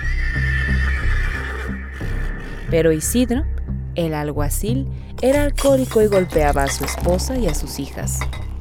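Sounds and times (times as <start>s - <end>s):
horse whinnying loudly: 0.0s - 2.0s
speech: 2.7s - 8.4s.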